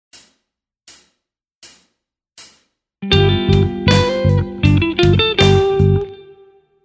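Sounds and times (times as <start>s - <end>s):
Mixolydian mode lick: 3.0s - 6.4s.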